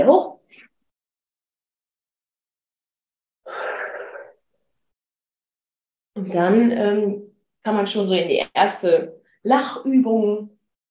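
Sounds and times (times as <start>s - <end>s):
speech: 0.0s - 0.7s, 6.2s - 10.5s
deep inhale and loud breathy exhale: 3.5s - 4.3s.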